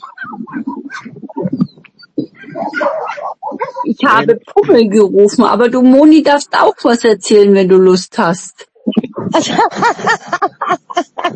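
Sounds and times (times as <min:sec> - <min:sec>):
dogs whimpering and whining: 0:00.0 - 0:03.9
several dogs barking: 0:00.0 - 0:04.8
speech: 0:03.9 - 0:11.3
laughter: 0:08.9 - 0:11.3.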